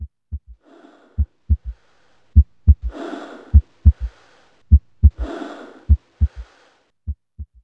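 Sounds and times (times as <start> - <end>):
heartbeat: 0.0 - 0.6, 1.2 - 1.8, 2.4 - 4.1, 4.7 - 6.5, 7.1 - 7.6.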